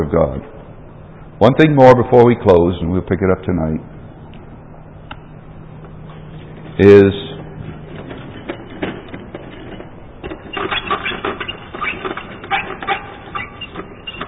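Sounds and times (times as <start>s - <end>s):
speech: 0.0s - 0.6s, 1.4s - 4.0s, 6.8s - 7.2s
squeaking and rattling from an unoiled object: 7.6s - 14.2s.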